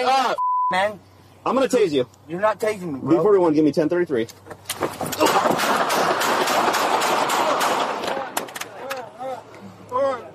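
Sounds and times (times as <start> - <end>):
people shouting: 0.0 - 0.4
speech: 0.0 - 6.1
gunshots during a police confrontation: 5.2 - 8.7.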